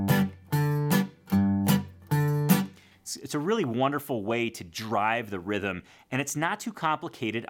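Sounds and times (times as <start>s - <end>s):
guitar G bar chord bass notes alternating with muted chunk strums: 0.0s - 3.0s
speech: 3.1s - 7.4s.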